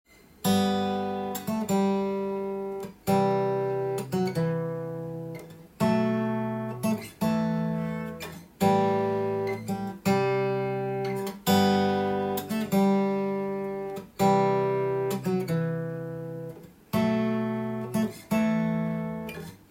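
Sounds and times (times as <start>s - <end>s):
solo guitar: 0.1s - 19.6s.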